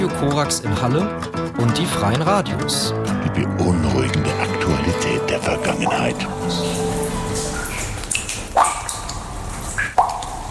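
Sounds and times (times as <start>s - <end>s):
speech: 0.1s - 6.9s
water dripping in the Frasassi limestone stalactite caves: 5.2s - 10.5s.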